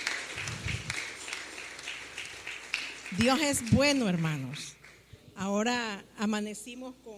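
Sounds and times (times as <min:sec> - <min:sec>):
audience applauding at a worship gathering: 0:00.0 - 0:05.0
speech: 0:03.1 - 0:04.8, 0:05.4 - 0:07.1.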